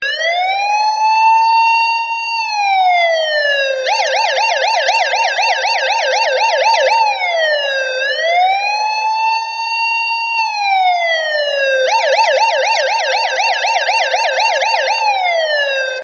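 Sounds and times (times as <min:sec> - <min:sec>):
police operation siren: 0:00.0 - 0:16.0.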